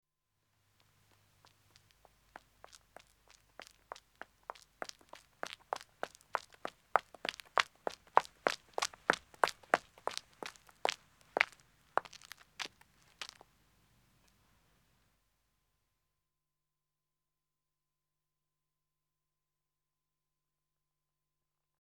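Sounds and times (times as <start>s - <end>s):
woman running footsteps on a country road: 1.0s - 13.5s.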